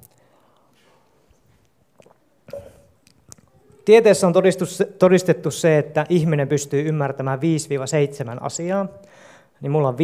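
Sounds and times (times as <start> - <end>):
person drinking a sip of water: 0.0 - 3.8
faint hiss: 0.0 - 10.0
speech: 3.9 - 10.0.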